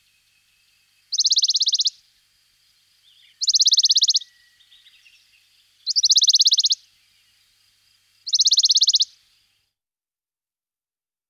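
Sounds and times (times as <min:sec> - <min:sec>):
Western Bonelli's warbler song trills: 0:00.0 - 0:07.6, 0:08.2 - 0:09.5.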